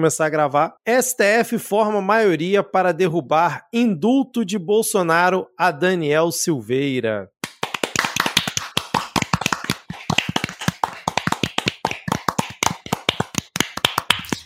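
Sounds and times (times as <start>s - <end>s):
speech: 0.0s - 7.3s
round of applause from a few people: 7.4s - 14.4s.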